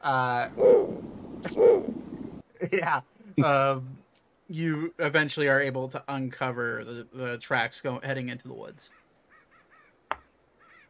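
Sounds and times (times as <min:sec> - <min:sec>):
speech: 0:00.0 - 0:00.6, 0:02.6 - 0:09.0
voice imitating wild owl screeches: 0:00.4 - 0:02.0.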